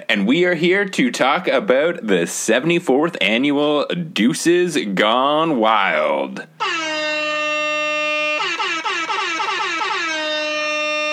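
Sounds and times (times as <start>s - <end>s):
speech: 0.1s - 6.8s
air horn blast: 6.6s - 11.1s.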